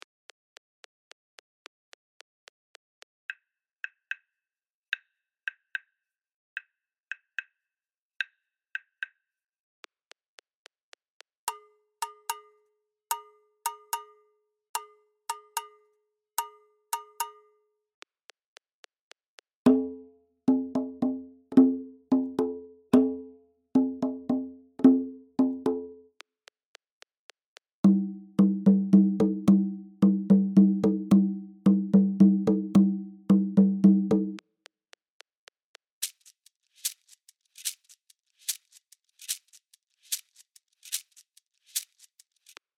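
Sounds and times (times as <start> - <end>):
Latin American rhythms at 110 bpm: 19.7 - 26.0, 27.8 - 34.4.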